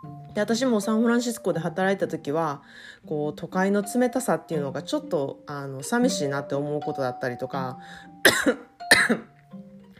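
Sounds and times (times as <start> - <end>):
speech: 0.0 - 9.3
person coughing: 8.2 - 9.3.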